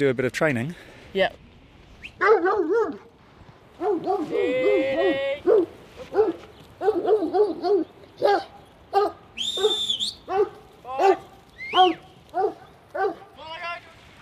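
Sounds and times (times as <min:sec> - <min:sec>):
speech: 0:00.0 - 0:01.4, 0:02.1 - 0:03.1, 0:03.8 - 0:13.2
working dogs barking and yelping in the back of a ute on a farm: 0:02.2 - 0:03.1, 0:03.8 - 0:13.3
brief whistle-like squeal: 0:09.4 - 0:10.2.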